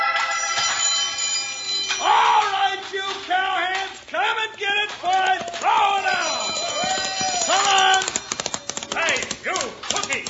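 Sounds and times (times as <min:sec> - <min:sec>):
chuck wagon dinner triangle clanging: 0:00.2 - 0:10.2
people shouting: 0:02.0 - 0:10.2
bellowing cries: 0:05.2 - 0:09.1.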